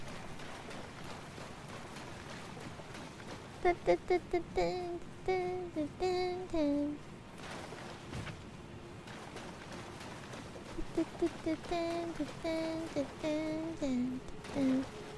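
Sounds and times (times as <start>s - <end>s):
cute nephilim noises: 3.7s - 7.0s, 10.7s - 14.9s.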